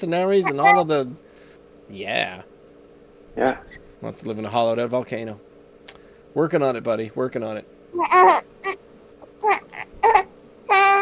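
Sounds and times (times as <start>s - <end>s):
speech: 0.0s - 1.2s, 1.9s - 2.5s, 3.4s - 8.8s, 9.4s - 10.3s
baby grunting and vocalizing: 0.4s - 0.8s, 3.4s - 3.8s, 8.0s - 11.0s.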